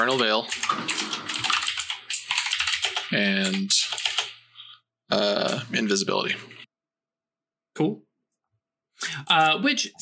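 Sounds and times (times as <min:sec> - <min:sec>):
speech: 0:00.0 - 0:01.2, 0:03.1 - 0:03.9, 0:05.1 - 0:06.6, 0:07.8 - 0:08.1, 0:09.0 - 0:10.0
rapid typing on a computer keyboard with plastic key clicks: 0:00.0 - 0:04.4.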